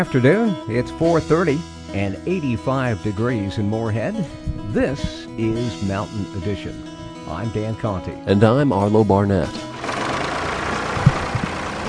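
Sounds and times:
speech: 0:00.0 - 0:09.7
tractor planting hemp seeds in a field at a university in Louisville: 0:09.7 - 0:11.8.

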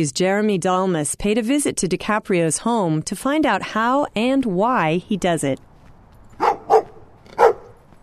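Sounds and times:
speech: 0:00.0 - 0:05.7
guard dogs barking at a house in West Oakland: 0:06.4 - 0:07.8.

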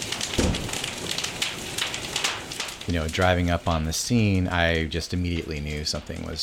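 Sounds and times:
dense pattering on a surface: 0:00.0 - 0:06.4
sharp crackling pops: 0:00.0 - 0:06.4
low thump: 0:00.4 - 0:00.8
speech: 0:02.9 - 0:06.4.

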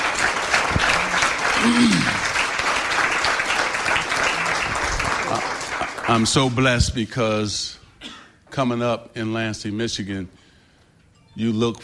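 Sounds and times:
crowd applauding: 0:00.0 - 0:06.8
speech: 0:01.6 - 0:02.2, 0:06.1 - 0:07.8, 0:08.6 - 0:10.4, 0:11.4 - 0:11.8.

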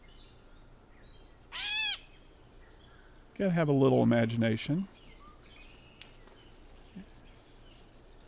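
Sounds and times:
gray catbird meow-like mewing call: 0:01.5 - 0:02.2
speech: 0:03.4 - 0:05.0.

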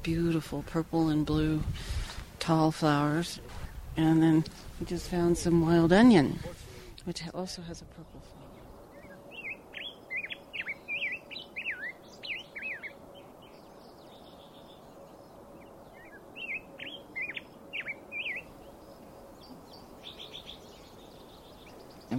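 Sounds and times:
speech: 0:00.0 - 0:08.4
low rumble of traffic from the I-70 highway: 0:00.0 - 0:22.1
bird singing bright rapid chirping phrases in a mountain meadow: 0:07.9 - 0:22.1.

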